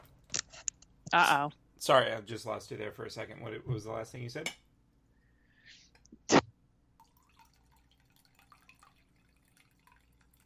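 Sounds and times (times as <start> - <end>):
speech: 1.1 - 4.6
coffee pouring into a cup: 7.0 - 10.4.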